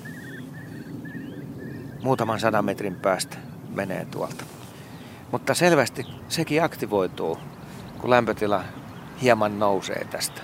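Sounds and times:
Eurasian curlew bubbling display calls: 0.0 - 10.4
speech: 2.0 - 4.6, 5.3 - 10.4.

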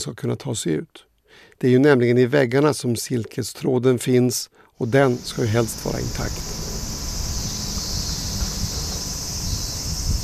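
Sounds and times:
speech: 0.0 - 6.6
cicadas buzzing loudly outdoors in the sun: 4.8 - 10.2
faint low rumble of wind: 4.9 - 10.2.

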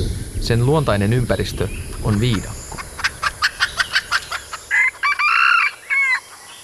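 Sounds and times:
speech: 0.4 - 2.6
sharp clucks: 1.9 - 6.2
red junglefowl rooster crowing: 3.2 - 6.6.

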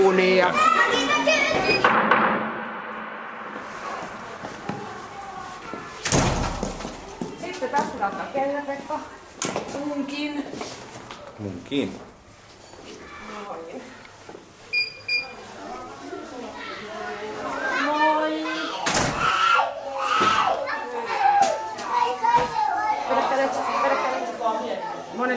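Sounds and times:
speech: 0.0 - 1.0, 8.0 - 10.8, 11.4 - 12.1
children shouting and chattering excitedly while playing: 0.0 - 1.9, 3.9 - 10.4, 12.8 - 14.6, 15.2 - 25.3.

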